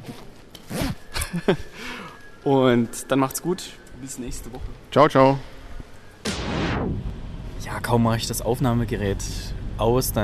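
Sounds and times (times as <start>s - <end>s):
jacket zipper being pulled shut: 0.0s - 1.1s
speech: 1.3s - 5.5s, 7.8s - 10.2s.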